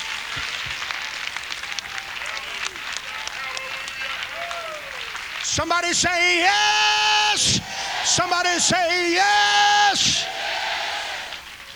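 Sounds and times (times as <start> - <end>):
large audience clapping and cheering: 0.0 - 11.7
audience voices calling out: 5.5 - 11.4
speech: 5.6 - 10.3.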